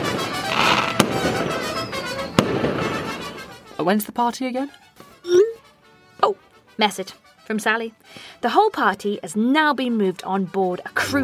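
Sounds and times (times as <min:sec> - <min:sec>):
fireworks bangs: 0:00.0 - 0:03.6
speech: 0:03.8 - 0:05.5, 0:06.2 - 0:11.2.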